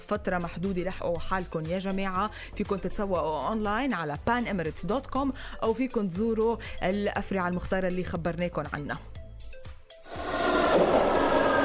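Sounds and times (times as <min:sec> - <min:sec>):
speech: 0:00.1 - 0:09.1
subway train arriving with deep rumbling roar: 0:10.1 - 0:11.6.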